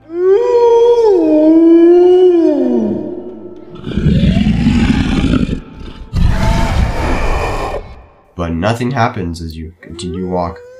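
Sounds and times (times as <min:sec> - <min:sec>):
long wavering animal howl sliding downward: 0:00.0 - 0:08.2
rough growling roars with a shrieking edge: 0:01.4 - 0:08.3
speech: 0:08.7 - 0:10.7.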